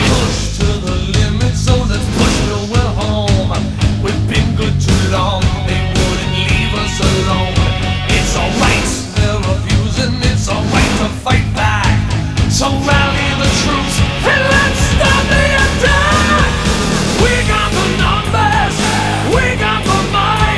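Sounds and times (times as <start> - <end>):
wake-up music: 0.0 - 20.5.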